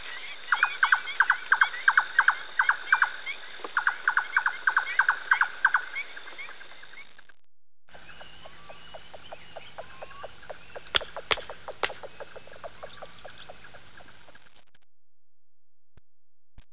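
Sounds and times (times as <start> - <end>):
bird song in Spain: 0.0 - 7.1, 7.9 - 14.3
loud clicks: 10.8 - 12.1.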